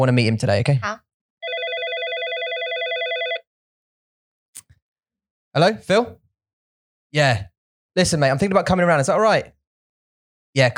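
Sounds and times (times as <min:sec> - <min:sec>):
speech: 0:00.0 - 0:01.0, 0:05.6 - 0:06.2, 0:07.1 - 0:09.6, 0:10.6 - 0:10.7
telephone ringing for an incoming call: 0:01.4 - 0:03.5.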